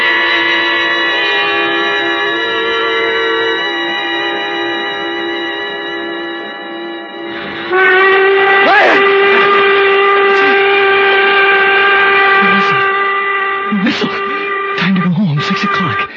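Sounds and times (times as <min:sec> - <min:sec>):
steam whistle blast: 0:01.0 - 0:16.1
faint voices: 0:08.6 - 0:13.0, 0:13.6 - 0:16.1.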